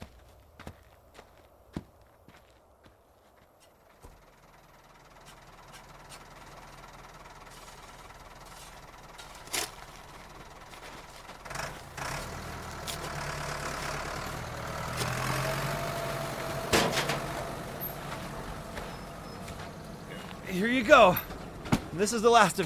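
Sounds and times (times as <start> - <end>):
gun truck engine idling: 3.8 - 22.6
sharp clanks and knocks: 16.4 - 20.4, 21.1 - 22.0
speech: 20.6 - 21.2, 22.0 - 22.6.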